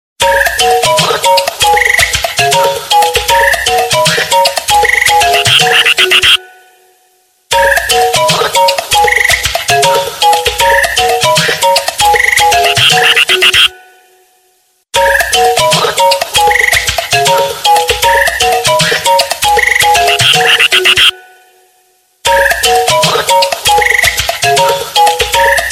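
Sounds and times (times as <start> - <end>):
crazy bird phone ringtone: 0.2 - 6.8, 7.6 - 14.1, 15.0 - 21.6, 22.3 - 25.7.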